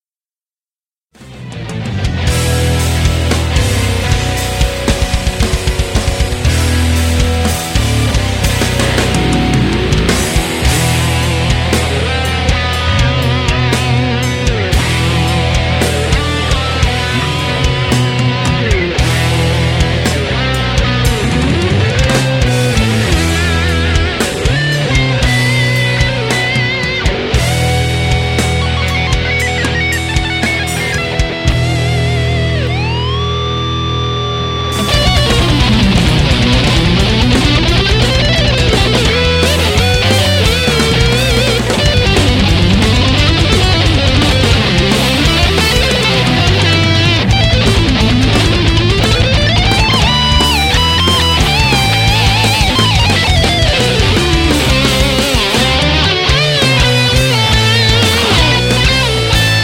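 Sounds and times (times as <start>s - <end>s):
groove guitar solo: 1.2s - 59.6s.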